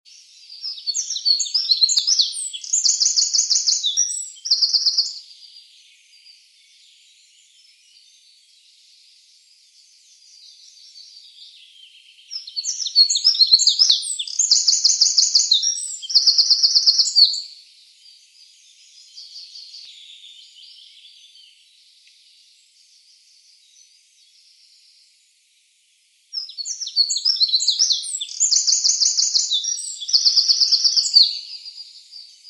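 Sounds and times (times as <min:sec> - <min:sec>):
wren singing: 0:00.1 - 0:06.4, 0:09.8 - 0:21.6, 0:26.3 - 0:32.4.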